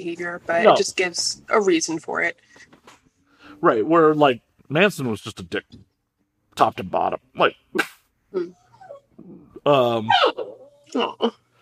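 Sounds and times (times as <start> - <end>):
speech: 0.0 - 2.8, 3.6 - 5.9, 6.6 - 8.6, 9.6 - 11.4
puppy whining: 8.4 - 11.4.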